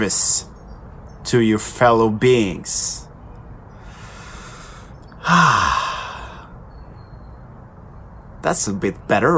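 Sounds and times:
speech: 0.0 - 0.5, 1.2 - 3.1, 5.3 - 5.8, 8.4 - 9.3
person yawning: 4.2 - 6.5.

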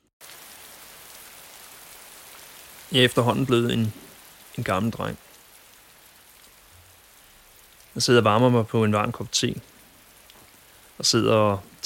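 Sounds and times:
heavy rain pouring down: 0.2 - 11.8
speech: 2.9 - 4.0, 4.6 - 5.2, 8.0 - 9.7, 11.0 - 11.8.

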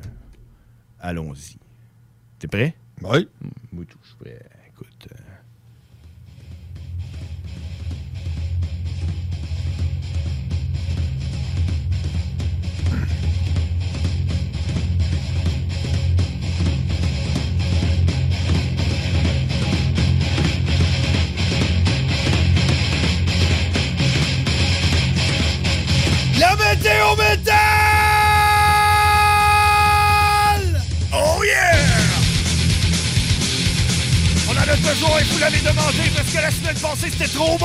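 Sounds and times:
loud dense wall of distorted sound: 0.0 - 1.7, 5.9 - 37.6
speech: 1.0 - 1.6, 2.4 - 5.2, 34.9 - 37.6
metal-style screamed growling vocals: 26.9 - 32.4.

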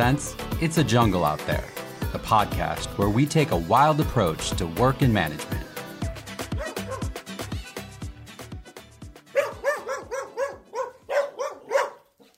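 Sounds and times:
speech: 0.0 - 5.6
dog whiny yelping: 6.6 - 7.1, 9.4 - 12.1
dog barking: 6.6 - 7.2, 9.3 - 12.3.

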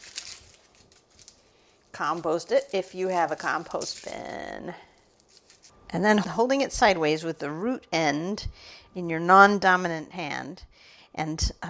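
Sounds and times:
papery outer skin crinkling as it is peeled off a medium onion: 0.0 - 6.3
speech: 2.0 - 4.9, 5.9 - 11.6.

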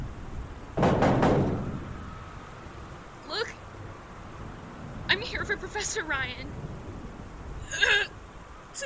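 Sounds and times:
fist pounding on a door: 0.8 - 1.8
speech: 5.1 - 6.7.

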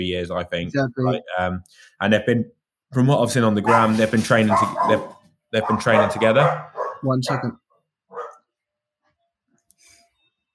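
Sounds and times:
speech: 0.0 - 7.6
dog barking: 3.6 - 8.5
dog yipping: 4.5 - 8.5.

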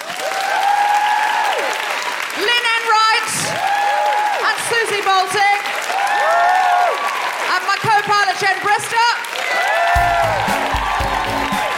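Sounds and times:
enthusiastic whoops and cheers: 0.0 - 2.2, 3.3 - 4.6, 5.8 - 7.5, 9.3 - 11.7
audience applause for the guests: 0.0 - 11.7.

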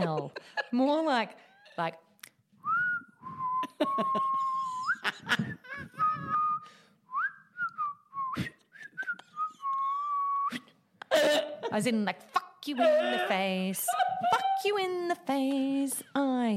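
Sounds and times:
laughter: 0.0 - 1.9, 3.6 - 6.3, 11.0 - 15.8
speech: 0.0 - 2.1, 3.8 - 5.9, 11.2 - 16.5
person whistling a slow seething tune: 2.6 - 5.0, 5.9 - 10.6
person breathing between whistled phrases: 5.4 - 7.1.

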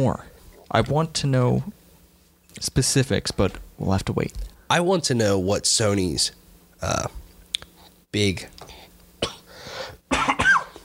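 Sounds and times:
speech: 0.0 - 1.8, 2.6 - 7.2, 8.1 - 9.3
person coughing from a lingering illness: 9.2 - 10.8.

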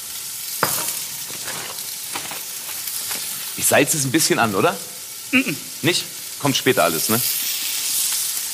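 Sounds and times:
food sizzling while searing in a hot pan: 0.0 - 8.5
crackles and pops of searing food: 1.0 - 3.6
speech: 3.6 - 7.4.

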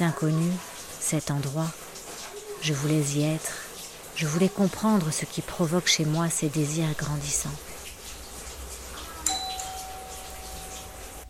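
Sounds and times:
speech: 0.0 - 1.8, 2.6 - 3.6, 4.2 - 7.7
front-door doorbell ringing: 9.2 - 11.2.

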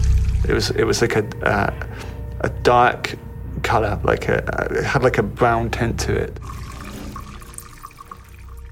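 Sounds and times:
water running from a tap: 0.0 - 0.8, 6.4 - 8.7
speech: 0.5 - 6.6.

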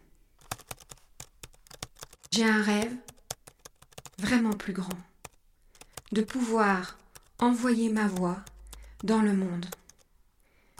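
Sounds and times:
typing on a computer keyboard: 0.4 - 10.7
speech: 2.4 - 3.1, 4.2 - 5.1, 6.1 - 9.8.

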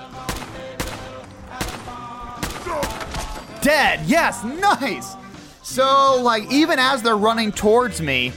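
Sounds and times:
rifle shots in a video game: 0.2 - 3.2
speech: 2.7 - 8.3.

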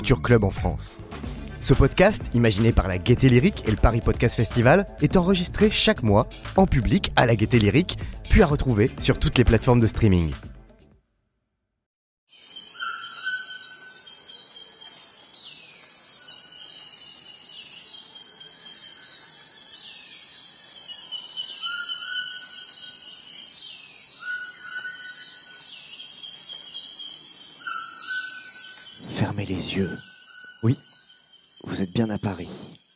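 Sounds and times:
speech: 0.0 - 10.5, 29.4 - 30.9, 31.6 - 32.8
high insect drone in jungle-like ambience: 12.3 - 32.9
bird calls and chirps in jungle-like ambience: 12.4 - 32.9.

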